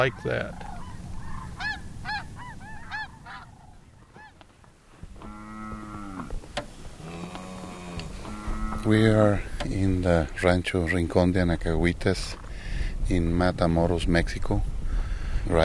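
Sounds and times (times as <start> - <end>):
speech: 0.0 - 0.7, 8.8 - 12.4, 13.1 - 14.7
geese honking at Laguna Madre lagoon in Matamoros Mexico: 0.0 - 4.5, 5.1 - 9.6
steady outdoor hiss: 0.0 - 15.6.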